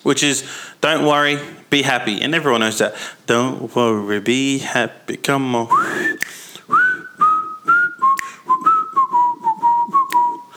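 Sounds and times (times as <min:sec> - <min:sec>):
speech: 0:00.0 - 0:06.8
person whistling a simple bouncy melody: 0:05.7 - 0:10.5.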